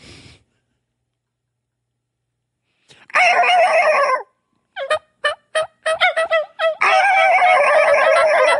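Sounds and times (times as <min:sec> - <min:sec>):
turkey call imitating a hen turkey's soft tree yelp: 0:03.1 - 0:08.5.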